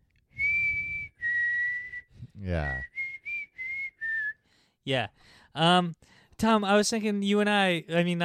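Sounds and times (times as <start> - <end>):
person whistling a short tune: 0.4 - 4.4
speech: 2.4 - 2.9, 4.8 - 8.2.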